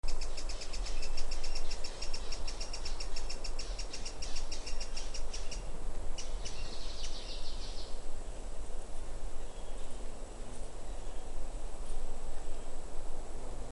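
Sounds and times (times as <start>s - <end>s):
azure crowned hummingbird: 0.0s - 12.9s.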